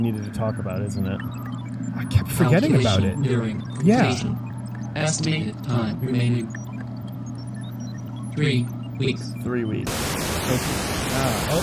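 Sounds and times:
speech: 0.0s - 6.6s, 8.4s - 11.6s
radio static hiss: 9.9s - 11.6s.

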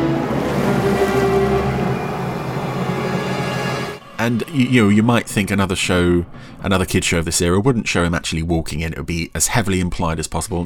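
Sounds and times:
ocean waves washing against the shore: 0.0s - 4.1s
speech: 4.2s - 10.6s.

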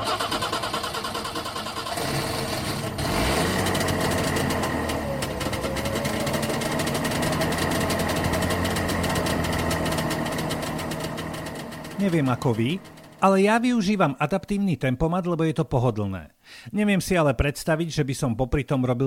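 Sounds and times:
Trabant car engine sputtering to life and idling with slight revving: 0.0s - 13.2s
speech: 12.0s - 19.0s.

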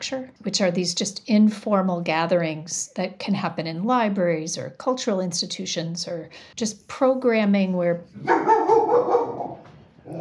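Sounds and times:
speech: 0.0s - 9.2s
big dog barking with deep woofs at a house: 8.2s - 10.1s.

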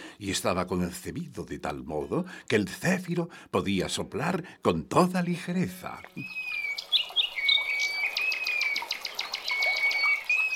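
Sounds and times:
speech: 0.2s - 7.1s
several birds chirping and trilling: 5.8s - 10.5s.

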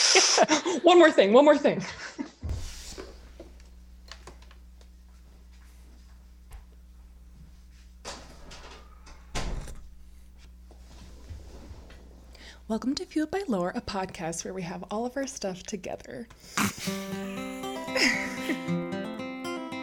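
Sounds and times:
speech: 0.1s - 2.3s, 12.7s - 17.4s, 18.0s - 18.9s
steady low electrical hum: 2.5s - 18.2s
door closing with a thud: 9.3s - 9.8s.

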